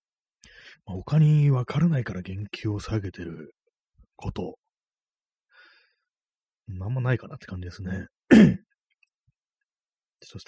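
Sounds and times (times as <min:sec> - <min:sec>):
speech: 0:00.8 - 0:03.6, 0:04.2 - 0:04.6, 0:06.7 - 0:08.6, 0:10.2 - 0:10.4
short gravelly throat clearing: 0:08.3 - 0:08.7.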